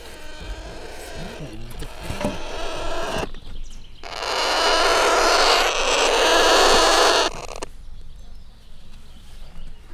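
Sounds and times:
Alexandrine parakeet chicks giving nasal bleating defensive calls and hissing screeches: 0:00.0 - 0:07.7.

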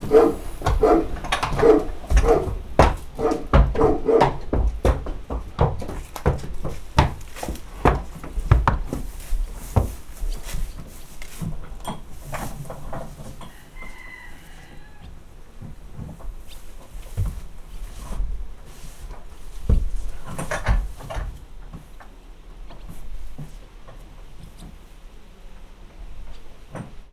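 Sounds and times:
dog in a stable on a farmyard: 0:00.0 - 0:04.4
horse in a stable on a farmyard: 0:00.0 - 0:27.1
wind on a farmyard: 0:00.0 - 0:27.1.

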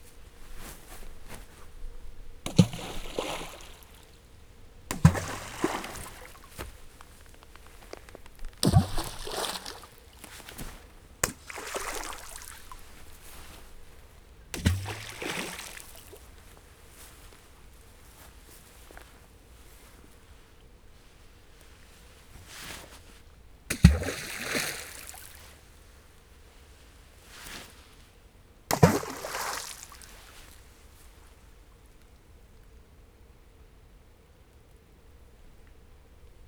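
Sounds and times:
embankment gravel stones thrown into water: 0:02.5 - 0:04.2, 0:04.9 - 0:13.3, 0:14.6 - 0:16.2, 0:23.7 - 0:25.4, 0:28.7 - 0:30.6.

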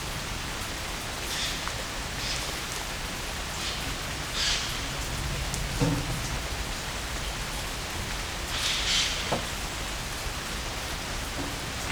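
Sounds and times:
rain in nature: 0:00.0 - 0:11.9.

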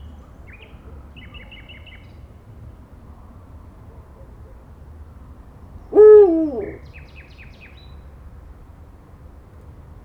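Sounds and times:
Little owl giving a mellow hoot at a zoo in Jászberény, Hungary: 0:06.0 - 0:06.8.

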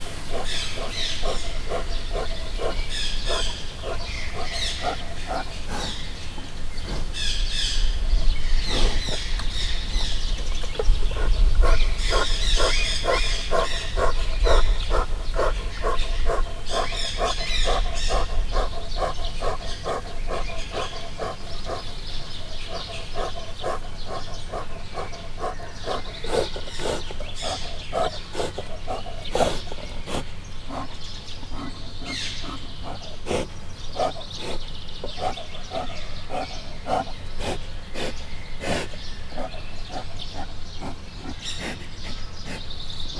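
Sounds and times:
brown bear breathing at Miskolc zoo: 0:00.0 - 0:43.1.

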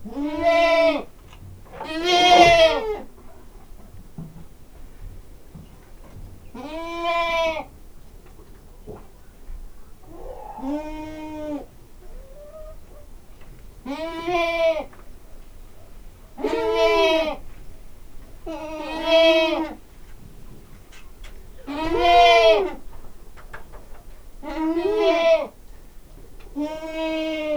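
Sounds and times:
hen in a farmyard: 0:00.0 - 0:04.1, 0:05.5 - 0:27.5
domestic goats bleating in a farmyard: 0:00.1 - 0:01.1, 0:01.8 - 0:03.0, 0:13.8 - 0:14.9, 0:16.4 - 0:17.4, 0:18.5 - 0:19.8, 0:21.7 - 0:22.8, 0:24.4 - 0:25.6, 0:26.6 - 0:27.5.

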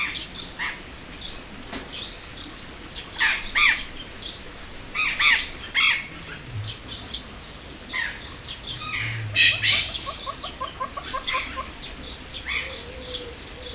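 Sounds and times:
red-billed hornbill clucking in a zoo: 0:04.9 - 0:13.7.

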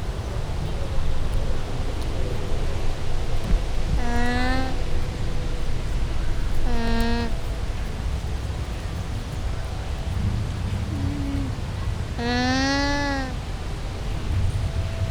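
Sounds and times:
steady low rumbling background noise at a zoo: 0:00.0 - 0:15.0
llama calls at a zoo: 0:03.4 - 0:05.0, 0:06.6 - 0:07.6, 0:12.2 - 0:13.4.

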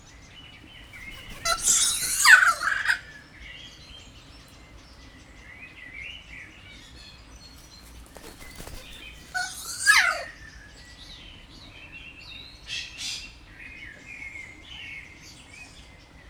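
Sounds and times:
kea calling loudly while moving: 0:00.9 - 0:03.2, 0:08.2 - 0:10.5.

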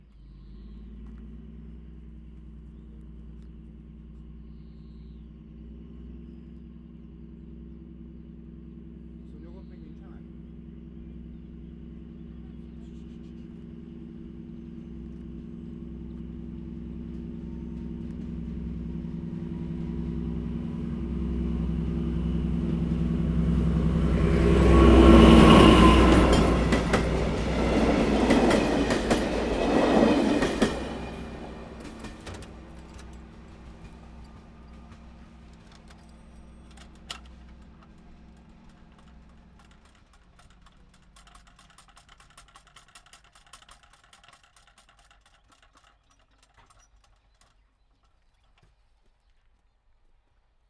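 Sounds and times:
train pulling out: 0:11.2 - 0:42.8
hand-cranked railway crossing barrier being wound up: 0:24.0 - 0:48.6.

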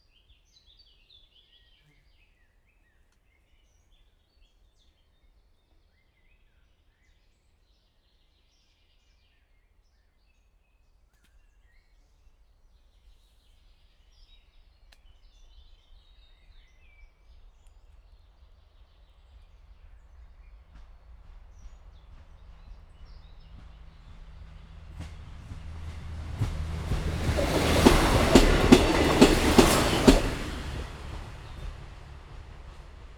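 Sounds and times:
motor train heard from outside: 0:19.4 - 0:33.1.

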